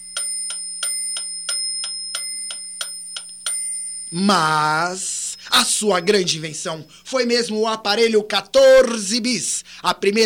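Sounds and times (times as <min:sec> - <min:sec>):
wristwatch ticking with crisp metallic ticks: 0:00.0 - 0:03.8
speech: 0:04.1 - 0:10.2.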